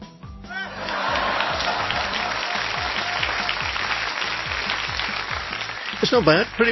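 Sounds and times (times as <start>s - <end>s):
voices shouting approval: 0.5s - 3.8s
laughter: 0.5s - 5.3s
crowd applauding: 0.5s - 6.6s
speech: 6.0s - 6.6s.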